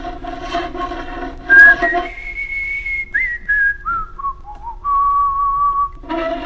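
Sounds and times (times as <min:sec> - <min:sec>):
noise: 0:00.0 - 0:06.4
person whistling a simple tune: 0:01.5 - 0:06.0.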